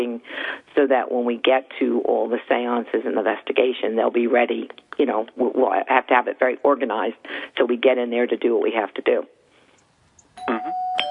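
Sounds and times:
speech: 0.0s - 9.4s
doorbell chiming with two quick tones: 10.4s - 11.0s.

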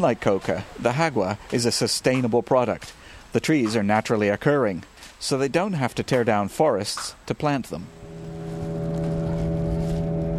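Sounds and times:
speech: 0.0s - 8.0s
boat motor droning heading upstream on a river: 7.9s - 10.3s
wind noise: 7.9s - 10.3s.

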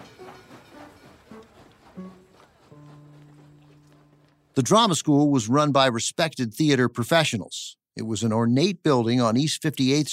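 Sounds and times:
train travelling from Buffalo to New York clattering along rails: 0.0s - 5.0s
speech: 4.6s - 10.1s.

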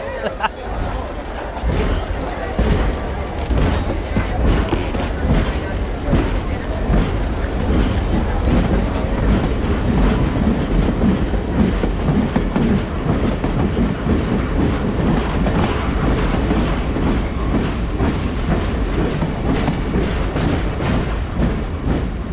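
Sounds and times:
laughter: 0.0s - 7.0s
faint murmuring voices: 0.0s - 22.3s
train wheels clicking on rails heard from inside the carriage: 0.0s - 22.3s.

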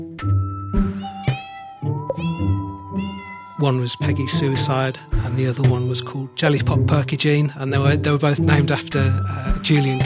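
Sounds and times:
playful kitten meowing high-pitched in a flat: 0.9s - 3.6s
speech: 3.6s - 10.0s.

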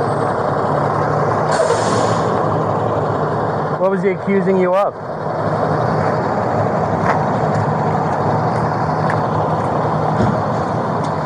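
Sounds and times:
loud truck engine rumble: 0.0s - 11.2s
truck air brakes hissing: 1.5s - 2.4s
speech: 3.9s - 5.6s.

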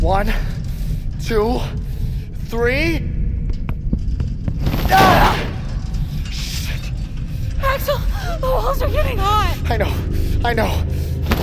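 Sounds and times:
speech: 0.0s - 0.6s, 1.2s - 1.9s, 2.5s - 3.1s, 7.7s - 11.4s
continuous low rumble: 0.0s - 11.4s
heavy body slamming into a door: 4.7s - 5.8s.

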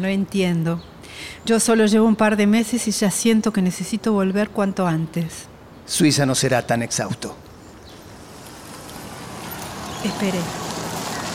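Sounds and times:
speech: 0.0s - 7.5s, 10.0s - 10.6s
car approaching with engine and road noise: 7.5s - 11.3s.

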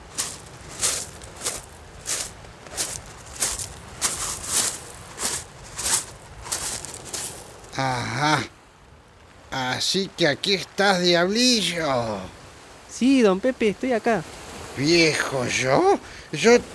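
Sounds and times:
footsteps crunching on loose stones: 0.0s - 7.8s
surf waves washing: 0.0s - 16.7s
speech: 7.8s - 8.5s, 9.5s - 12.4s, 13.0s - 16.7s.

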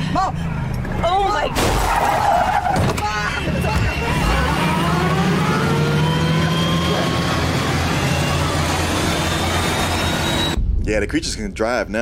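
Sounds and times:
speech: 0.2s - 2.9s, 10.9s - 11.9s
Greyhound bus engine revving while driving: 3.4s - 10.6s.

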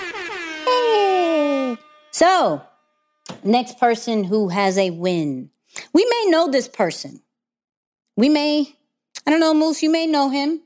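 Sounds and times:
loud air horn blaring: 0.0s - 4.3s
speech: 2.2s - 2.7s, 3.4s - 7.2s, 8.2s - 10.6s.

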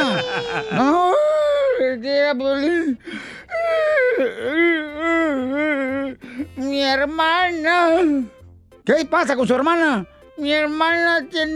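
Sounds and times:
laughter: 0.0s - 1.7s
person crying and wailing: 0.0s - 6.9s
speech: 0.5s - 1.0s, 1.9s - 11.5s
sharp gasping breaths: 3.0s - 3.5s.

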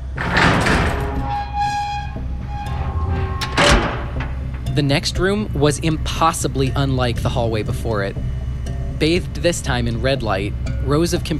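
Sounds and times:
heavy rusted metal door creaking open: 0.0s - 5.3s
rusty hinges of a heavy metal door squealing: 0.0s - 6.1s
speech: 4.8s - 8.3s, 9.0s - 11.3s.

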